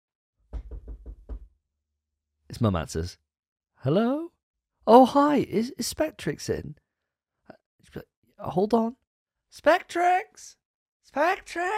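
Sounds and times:
heavy knocks on a door: 0.4s - 1.6s
speech: 2.5s - 3.2s, 3.8s - 4.2s, 4.8s - 6.8s, 7.8s - 11.7s.

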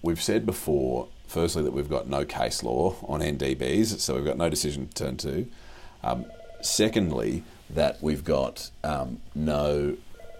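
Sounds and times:
speech: 0.0s - 10.1s
faint quiet noises: 0.0s - 10.3s
telephone ringing: 6.2s - 7.0s, 10.1s - 10.3s.

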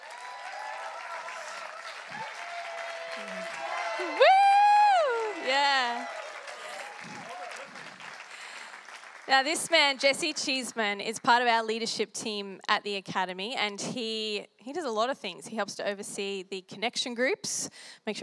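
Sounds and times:
audience applause: 0.0s - 11.4s
person letting out a loud rising whoop: 0.1s - 7.9s
speech: 9.3s - 18.2s.

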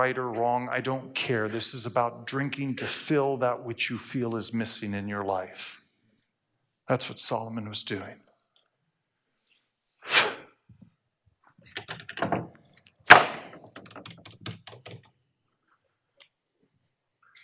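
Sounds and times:
speech: 0.0s - 5.8s, 6.9s - 8.3s
door opening with latch clunk and rattling clicks: 11.6s - 12.7s.

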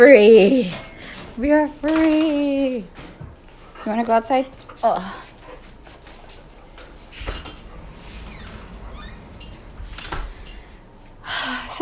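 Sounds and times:
speech: 0.0s - 3.0s, 3.8s - 5.2s
dog whining and whimpering: 7.3s - 10.7s.

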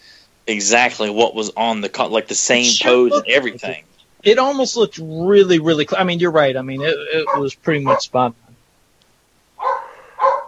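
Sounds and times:
laughter: 0.5s - 6.0s, 6.7s - 8.3s
speech: 0.5s - 8.4s
dog barking excitedly: 6.8s - 8.2s, 9.6s - 10.4s.

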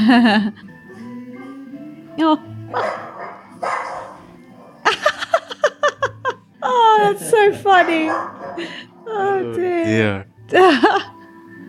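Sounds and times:
speech: 0.0s - 0.7s, 2.2s - 3.8s, 6.6s - 11.1s
dog barking in a played video: 2.7s - 4.9s, 7.8s - 8.7s
laughter: 4.8s - 7.8s.

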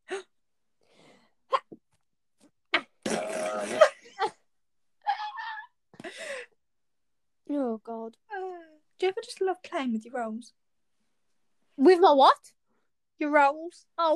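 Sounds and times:
loud sneeze: 2.8s - 4.0s
speech: 9.0s - 10.6s, 11.8s - 12.6s, 13.2s - 14.1s.

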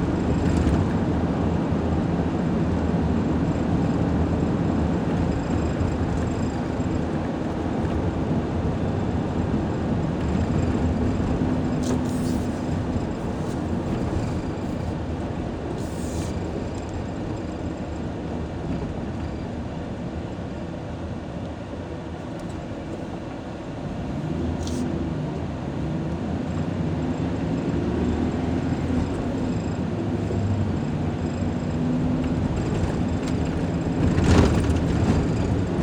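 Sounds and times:
highway road noise inside a Ford F-150 pickup truck: 0.0s - 35.8s.

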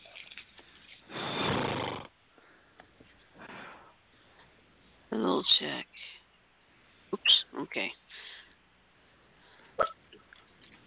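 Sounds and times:
speech: 5.2s - 6.2s, 7.1s - 8.3s
hiccup: 9.8s - 10.0s.

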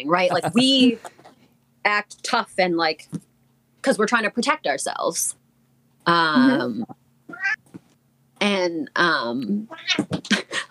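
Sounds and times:
speech: 0.0s - 1.2s, 1.8s - 5.4s, 6.0s - 7.0s, 8.4s - 10.6s
cat meowing: 7.3s - 7.6s, 9.7s - 10.1s.

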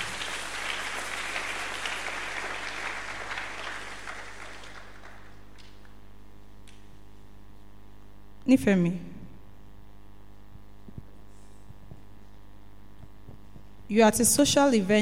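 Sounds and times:
audience clapping: 0.0s - 6.0s
low steady hum: 0.0s - 14.9s
speech: 8.5s - 9.1s, 13.9s - 14.9s.

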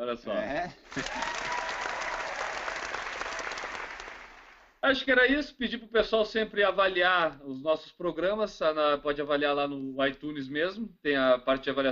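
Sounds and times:
speech: 0.0s - 1.6s, 4.8s - 11.9s
crowd applauding: 0.8s - 4.8s
laughter: 0.9s - 4.4s.

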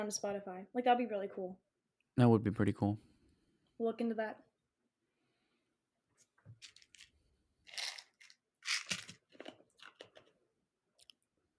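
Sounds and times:
speech: 0.0s - 3.1s, 3.8s - 4.5s
loud crunching as something is bitten and chewed: 7.7s - 10.3s.

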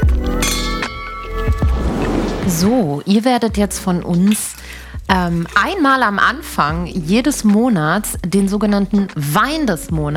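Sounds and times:
wine glasses clinking in a toast: 0.3s - 1.6s, 4.2s - 5.8s
speech: 2.5s - 10.1s.

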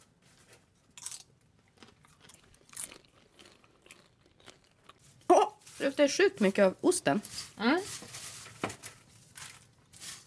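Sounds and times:
person chewing a cheesy chili dish: 0.6s - 5.6s
loud crunch: 1.0s - 5.2s
speech: 5.8s - 8.0s.

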